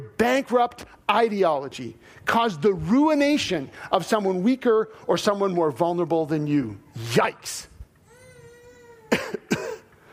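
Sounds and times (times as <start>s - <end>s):
speech: 0.1s - 7.7s, 9.1s - 9.6s
harsh coughs: 9.1s - 9.9s.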